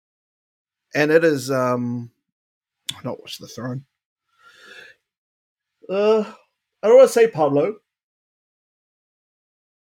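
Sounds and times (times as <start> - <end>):
speech: 0.9 - 2.2, 2.9 - 3.9, 5.9 - 7.8
soft breathy exhale after a sip of a drink: 4.3 - 5.0.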